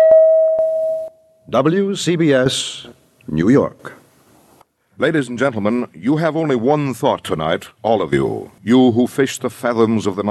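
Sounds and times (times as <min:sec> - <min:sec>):
gong-like time signal tone: 0:00.0 - 0:01.3
speech: 0:01.5 - 0:04.0, 0:05.0 - 0:10.2.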